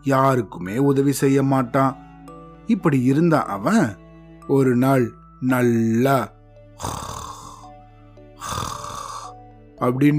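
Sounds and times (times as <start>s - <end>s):
speech: 0.0s - 2.0s, 2.7s - 7.2s, 9.8s - 10.1s
person imitating loud snoring: 6.8s - 7.7s, 8.4s - 9.4s.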